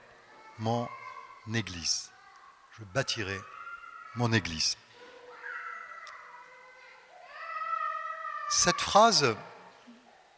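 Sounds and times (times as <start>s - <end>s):
faint room noise: 0.0s - 10.3s
speech: 0.6s - 2.2s, 2.8s - 3.6s, 4.2s - 4.8s, 8.5s - 9.5s
child in the audience wailing during a church sermon: 3.4s - 4.3s, 5.3s - 9.2s.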